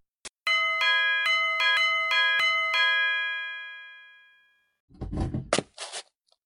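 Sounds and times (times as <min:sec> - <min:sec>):
doorbell chime ringing: 0:00.5 - 0:04.8
thump: 0:04.9 - 0:05.6.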